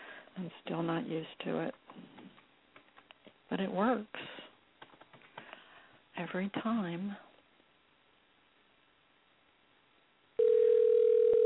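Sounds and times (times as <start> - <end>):
speech: 0.4 - 2.2, 3.5 - 4.4, 6.2 - 7.3
phone line dial tone from dialing a number on a computer: 10.4 - 11.4.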